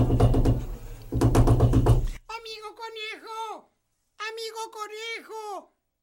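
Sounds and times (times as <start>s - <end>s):
insistent heavy knocking on a door: 0.0s - 2.2s.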